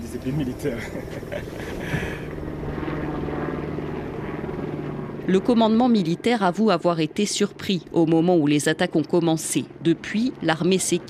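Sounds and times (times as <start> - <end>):
military helicopter rotor thumping: 0.0 - 11.0
speech: 0.1 - 2.0, 5.3 - 11.0
laughter: 0.6 - 2.3.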